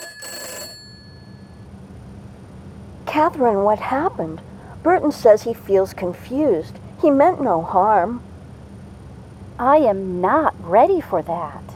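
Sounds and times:
mobile phone ringing: 0.0s - 1.6s
low steady hum: 0.0s - 11.7s
speech: 3.1s - 8.3s, 9.6s - 11.7s.

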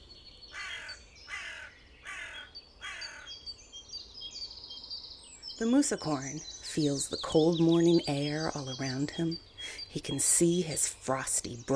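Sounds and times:
bird chirps twittering: 0.0s - 11.7s
crow cawing: 0.5s - 3.4s
speech: 5.6s - 11.7s.

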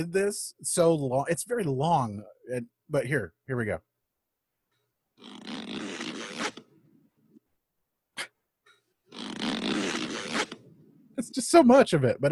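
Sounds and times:
speech: 0.0s - 3.9s, 11.2s - 12.3s
bag zipper zipping as a man packs up: 5.2s - 6.8s, 9.1s - 10.7s.

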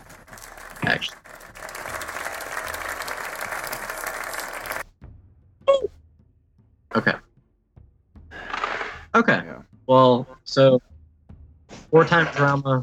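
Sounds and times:
audience applause: 0.0s - 4.8s
speech: 0.9s - 1.2s, 7.0s - 7.2s, 9.2s - 10.9s, 11.9s - 12.8s.

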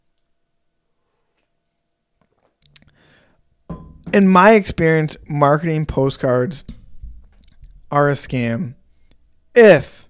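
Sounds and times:
coffee cup clinking: 3.7s - 4.3s
speech: 4.1s - 6.8s, 7.9s - 8.8s, 9.6s - 10.0s.

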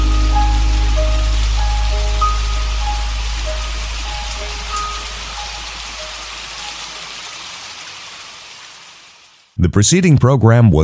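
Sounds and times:
low hum: 0.0s - 5.4s
faint sustained tones: 0.0s - 5.8s
rain pattering on a hard surface: 0.0s - 9.6s
speech: 9.7s - 10.8s.

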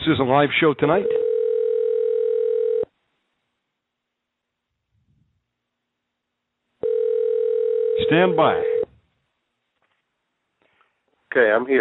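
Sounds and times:
speech: 0.0s - 1.2s, 8.1s - 8.8s, 11.3s - 11.7s
telephone tone while placing a call during a live show: 1.1s - 2.9s, 6.8s - 8.9s.

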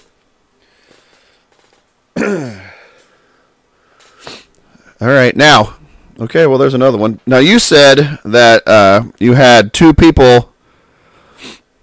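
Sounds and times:
speech: 2.2s - 2.6s, 5.0s - 10.5s
forced exhale in a breathing exercise: 2.5s - 4.8s, 10.6s - 11.7s
sharp breath: 2.6s - 4.6s, 10.6s - 11.7s.

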